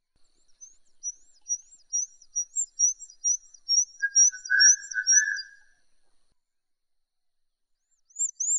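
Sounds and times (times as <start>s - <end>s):
Horsfield's bush lark song: 0.2s - 5.8s.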